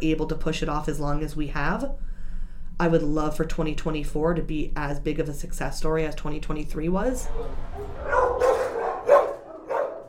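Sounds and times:
speech: 0:00.0 - 0:02.1, 0:02.8 - 0:08.1
dogs barking in shelter kennels: 0:07.2 - 0:10.0.

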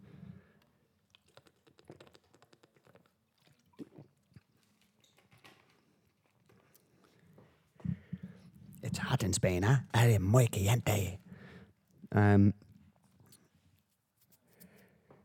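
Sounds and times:
person sipping a drink with slurps and swallows: 0:00.6 - 0:05.8
speech: 0:08.9 - 0:11.2, 0:12.2 - 0:12.6.

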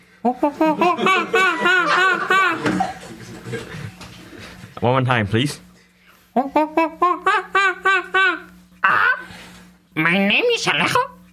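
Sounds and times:
speech: 0:00.2 - 0:01.8, 0:04.8 - 0:05.7, 0:06.4 - 0:07.0, 0:10.0 - 0:11.1
person imitating monkey with high-pitched hoots: 0:00.2 - 0:02.6, 0:06.4 - 0:09.4
laughter: 0:00.3 - 0:04.6, 0:06.4 - 0:09.2.

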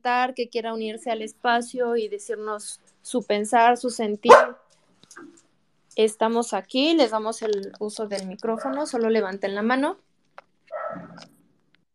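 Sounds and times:
speech: 0:00.0 - 0:04.6, 0:06.0 - 0:10.1
dog bark: 0:04.3 - 0:04.6, 0:10.7 - 0:11.2.

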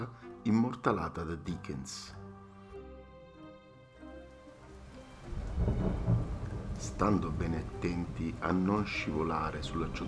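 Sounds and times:
speech: 0:00.0 - 0:02.2, 0:06.8 - 0:10.0
heavy rain pouring: 0:04.3 - 0:10.0
deep rolling rumble: 0:05.2 - 0:10.0.

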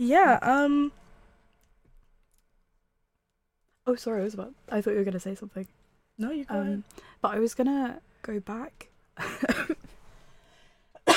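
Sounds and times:
speech: 0:00.0 - 0:01.0, 0:03.9 - 0:09.9
person coughing into the microphone: 0:09.3 - 0:09.9, 0:11.0 - 0:11.1.

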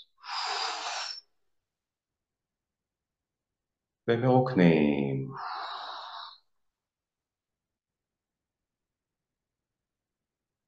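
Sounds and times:
deep airy inhalation: 0:00.0 - 0:01.4, 0:05.4 - 0:06.5
speech: 0:04.1 - 0:05.5.

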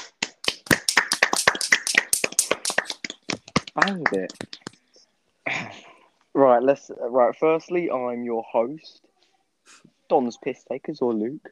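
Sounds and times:
hand clapping: 0:00.0 - 0:04.8
speech: 0:03.8 - 0:04.6, 0:06.4 - 0:09.0, 0:10.1 - 0:11.5.

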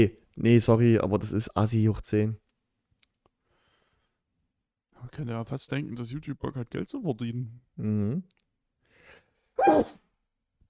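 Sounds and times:
speech: 0:00.0 - 0:02.4, 0:05.0 - 0:08.4, 0:09.6 - 0:10.0
sneeze: 0:09.6 - 0:10.0.

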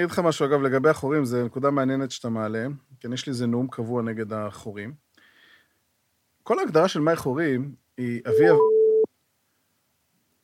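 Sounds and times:
speech: 0:00.0 - 0:05.0, 0:06.4 - 0:08.7
telephone busy tone beep after dialing: 0:08.3 - 0:09.1.

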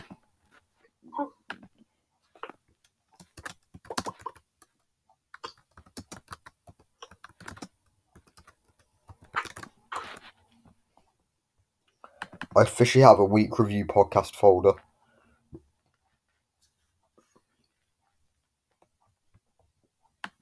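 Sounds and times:
typing on a computer keyboard while making a folder: 0:03.2 - 0:04.8, 0:05.4 - 0:10.3
speech: 0:12.6 - 0:14.8.

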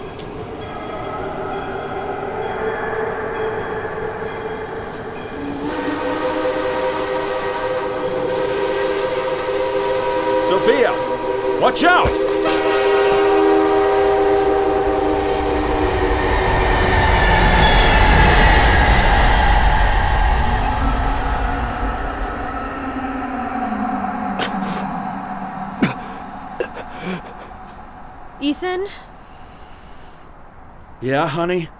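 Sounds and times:
steam locomotive rumbling past: 0:00.0 - 0:28.4
speech: 0:11.6 - 0:12.2, 0:31.0 - 0:31.7
steam train rattling and sharp clanks: 0:12.0 - 0:13.8.

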